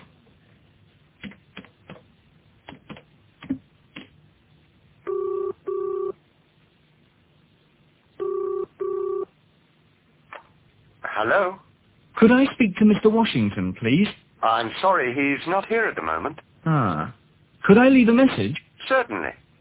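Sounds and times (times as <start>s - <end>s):
double-pulse telephone ringing tones through the line: 5.0s - 6.2s, 8.2s - 9.3s
speech: 11.2s - 11.6s, 12.2s - 19.4s.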